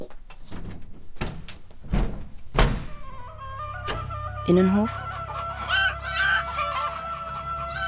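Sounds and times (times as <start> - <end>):
window being opened with solid clunks and a sliding rattle: 0.4 - 4.3
steady low hum: 1.9 - 7.7
chickens clucking and squawking in crates: 2.9 - 7.8
speech: 4.5 - 5.0.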